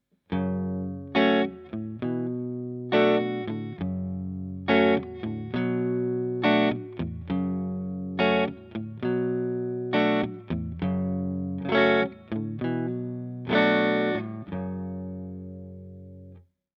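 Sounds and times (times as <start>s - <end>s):
clean electric guitar through a Bogner Alchemist amplifier on the neck pickup: 0.3s - 16.5s.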